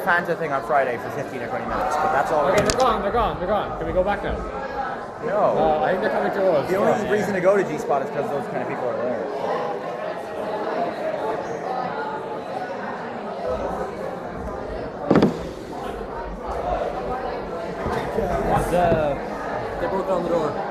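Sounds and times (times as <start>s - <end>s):
speech: 0.0s - 9.6s, 19.9s - 20.7s
crowd chattering and murmuring: 0.0s - 20.7s
people banging on a door: 15.1s - 15.9s.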